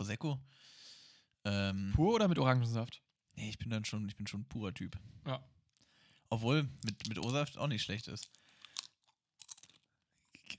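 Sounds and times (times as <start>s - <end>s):
speech: 0.0s - 0.8s, 1.4s - 5.6s, 6.3s - 8.4s
crunching on a crispy snack: 6.8s - 9.9s.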